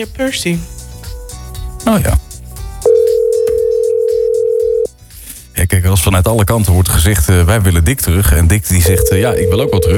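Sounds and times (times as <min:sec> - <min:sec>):
speech: 0:00.0 - 0:00.8, 0:01.8 - 0:02.2, 0:05.6 - 0:09.9
telephone ringing tone of an outgoing call: 0:02.9 - 0:04.9, 0:08.9 - 0:09.9.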